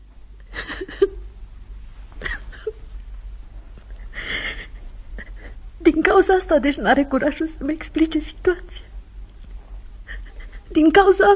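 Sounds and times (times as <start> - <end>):
woman sobbing with shaky breathy crying: 0.4 - 1.4, 2.2 - 3.0, 3.8 - 8.9, 10.0 - 11.3
speech: 6.1 - 8.9, 10.8 - 11.3.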